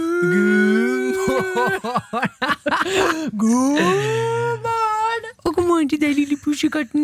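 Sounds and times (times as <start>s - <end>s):
human voice imitating a cow's moo: 0.0s - 1.6s
speech: 0.2s - 0.8s, 1.5s - 4.6s, 5.8s - 7.0s
laughter: 0.8s - 4.1s.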